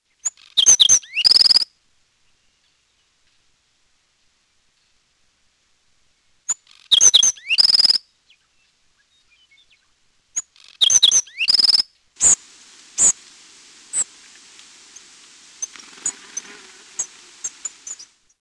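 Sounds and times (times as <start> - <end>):
black-throated sparrow: 0.1 - 1.6, 6.5 - 18.2.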